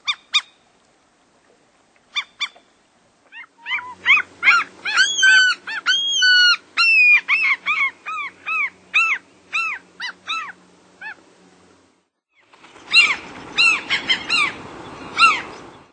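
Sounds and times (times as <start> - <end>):
mew gull squealing calls: 3.3 - 11.2, 12.9 - 14.6, 15.2 - 15.6.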